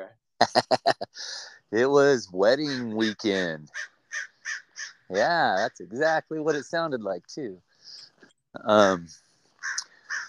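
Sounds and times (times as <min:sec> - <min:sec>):
speech: 0:00.1 - 0:04.3, 0:05.1 - 0:07.7, 0:08.5 - 0:09.8
laughter: 0:00.4 - 0:03.5, 0:05.2 - 0:07.0
crow cawing: 0:02.6 - 0:05.7, 0:09.6 - 0:10.2.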